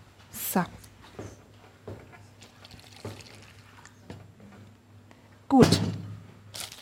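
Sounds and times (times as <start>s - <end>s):
speech: 0.5s - 1.4s, 5.5s - 6.0s
cold water pouring into a dish over rusks: 2.5s - 3.8s.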